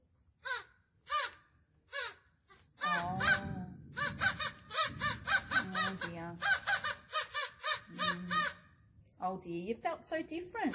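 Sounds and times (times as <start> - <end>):
low rumble: 2.8 - 6.8
crows cawing: 2.8 - 8.8
speech: 5.9 - 6.6, 8.0 - 8.6, 9.2 - 10.7.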